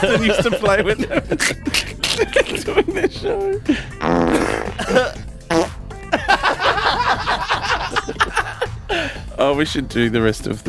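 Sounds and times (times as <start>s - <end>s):
laughter: 0.0s - 5.2s, 6.0s - 9.2s
speech: 0.0s - 5.6s, 9.4s - 10.6s
buzzy fart sound effects from a soundboard: 4.0s - 5.9s.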